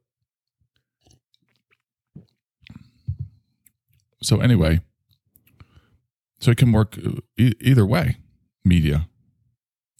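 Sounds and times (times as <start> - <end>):
person sipping coffee: 0.8 - 3.0
speech: 4.2 - 4.9, 6.4 - 9.1.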